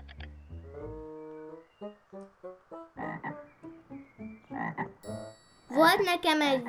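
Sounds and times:
frog croaking: 3.0s - 3.5s, 4.5s - 5.0s
speech: 5.8s - 6.6s.

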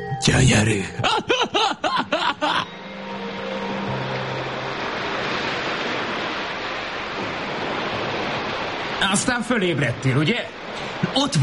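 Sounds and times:
speech: 0.2s - 2.5s, 9.0s - 11.4s
rhythmic laugh-like calls: 1.0s - 2.7s
waves breaking on a rocky shore: 4.0s - 11.4s.

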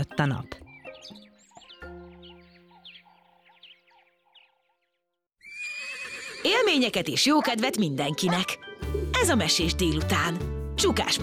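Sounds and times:
speech: 0.1s - 1.2s, 6.4s - 11.2s
horse giving a long loud quavering whinny: 5.4s - 6.9s.

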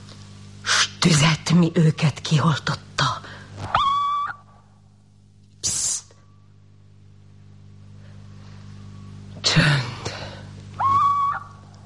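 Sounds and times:
speech: 1.0s - 3.1s
little owl screeching at night: 3.7s - 4.6s, 10.8s - 11.6s.

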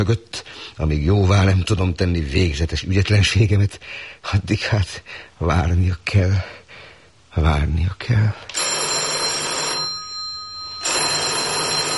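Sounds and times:
speech: 0.0s - 6.6s, 7.4s - 8.6s
old-style telephone bell ringing: 8.5s - 11.9s.

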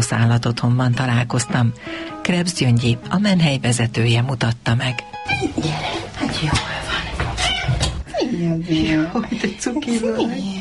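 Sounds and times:
speech: 0.0s - 7.0s, 8.3s - 10.5s
cat meowing: 7.4s - 8.0s.

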